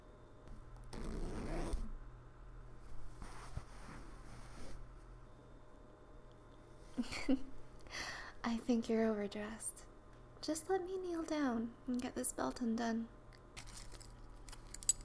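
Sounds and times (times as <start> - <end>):
clothing zipper being pulled in raspy bursts: 0.8 - 2.0, 3.2 - 4.8
speech: 7.0 - 7.6, 8.4 - 9.8, 10.4 - 13.2.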